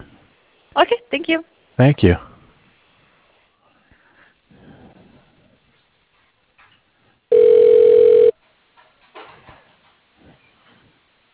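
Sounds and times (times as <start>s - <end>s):
speech: 0.8s - 2.3s
telephone tone as a call is transferred to voicemail: 7.3s - 8.4s.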